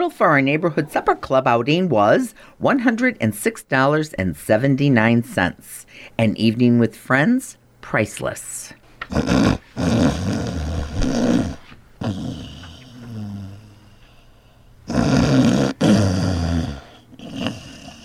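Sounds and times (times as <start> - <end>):
speech: 0.0 - 10.5, 12.0 - 12.3
man snoring with rasping growly breaths: 9.1 - 14.0, 14.9 - 18.0.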